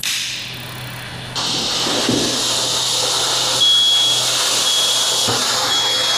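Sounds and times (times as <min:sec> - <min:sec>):
broadband hiss: 0:00.0 - 0:06.1
smoke alarm triggered by insecticide fumigant smoke in a closed home: 0:01.4 - 0:06.1.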